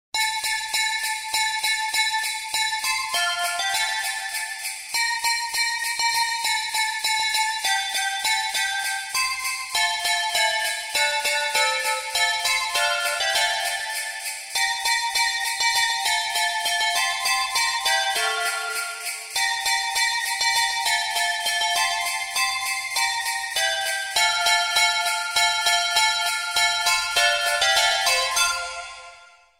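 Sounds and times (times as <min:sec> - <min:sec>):
solo bells playing a Christmas tune: 0:00.2 - 0:29.5.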